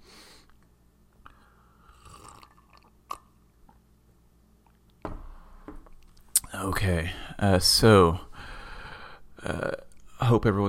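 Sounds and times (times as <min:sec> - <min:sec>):
slurping sip of coffee: 0:01.9 - 0:03.3
speech: 0:06.6 - 0:08.3, 0:10.3 - 0:10.6.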